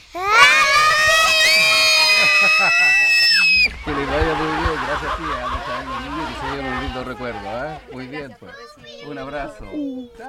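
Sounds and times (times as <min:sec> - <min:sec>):
group of children shouting a cheer in unison: 0:00.2 - 0:06.4
laughter: 0:00.4 - 0:08.3
speech: 0:02.6 - 0:03.0, 0:05.0 - 0:10.2.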